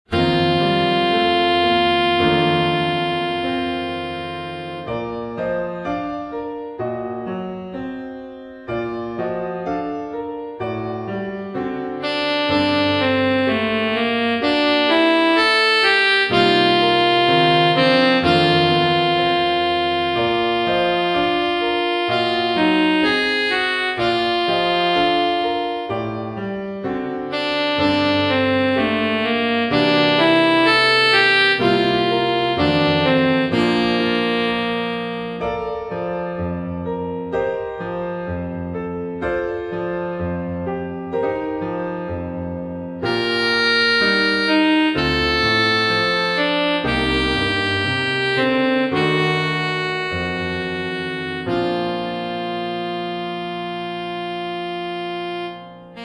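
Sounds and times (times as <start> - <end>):
saxophone in a romance piece: 0.1 - 7.0, 9.2 - 56.0.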